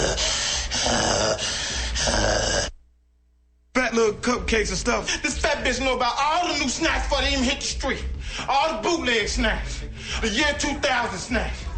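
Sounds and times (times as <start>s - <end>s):
person imitating snoring: 0.0s - 2.8s
speech: 4.1s - 11.6s.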